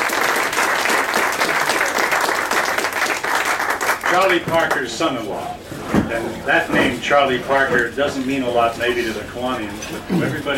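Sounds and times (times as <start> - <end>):
room full of people applauding a retired police officer: 0.0 - 4.8
speech: 4.1 - 10.5.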